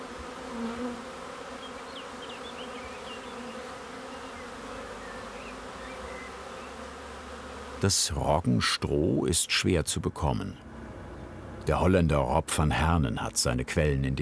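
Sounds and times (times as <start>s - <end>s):
many honeybees buzzing at beekeeper's hives: 0.0s - 9.2s, 9.8s - 14.2s
faint high bird chirps: 1.6s - 6.8s
speech: 7.8s - 10.7s, 11.7s - 14.2s.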